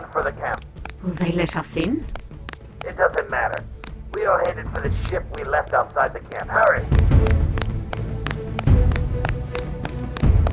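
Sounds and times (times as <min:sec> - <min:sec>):
footsteps of someone running in a cargo area: 0:00.0 - 0:10.5
speech: 0:00.2 - 0:02.2, 0:02.8 - 0:07.6.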